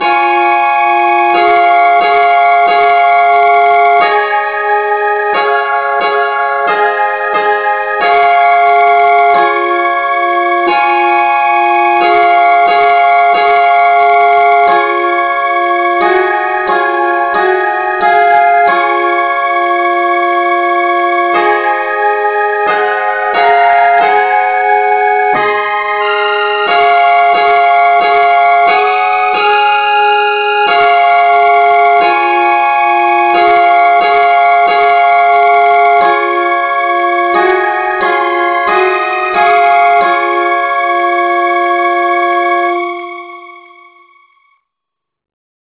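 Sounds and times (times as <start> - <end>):
instrumental music in C sharp: 0.0 - 44.2.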